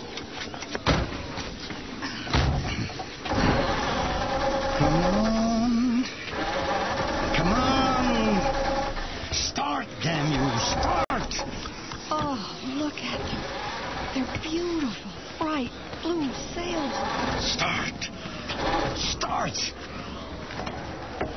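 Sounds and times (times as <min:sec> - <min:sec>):
truck door slamming shut: 0:00.8 - 0:01.4, 0:02.3 - 0:03.8
flooded truck engine cranking without catching: 0:02.1 - 0:21.3.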